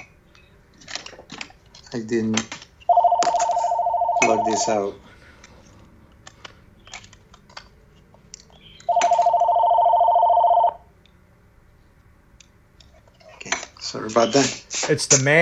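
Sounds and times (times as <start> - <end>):
speech: 1.9 - 2.6, 4.2 - 5.0, 14.0 - 15.4
telephone ringing with an electronic trill: 2.9 - 5.0, 8.9 - 10.9.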